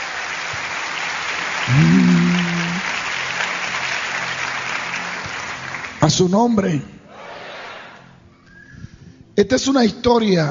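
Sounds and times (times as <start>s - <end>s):
crowd applauding loudly: 0.0s - 6.0s
speech: 1.7s - 2.5s, 6.1s - 7.0s, 9.4s - 10.4s
sustained rising tone: 1.7s - 2.8s.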